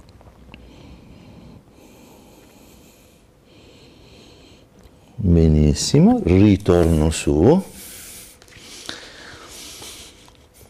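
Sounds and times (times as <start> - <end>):
slow deep breaths while relaxing the legs during a stretching exercise: 0.5 - 5.2, 7.7 - 10.6
speech: 5.2 - 7.7.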